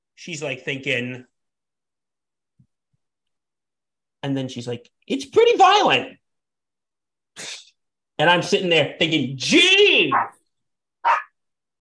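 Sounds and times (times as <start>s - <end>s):
speech: 0.2s - 1.3s, 4.2s - 6.2s, 7.4s - 7.6s, 8.2s - 10.4s
single sharp dog bark: 10.1s - 10.4s, 11.0s - 11.4s.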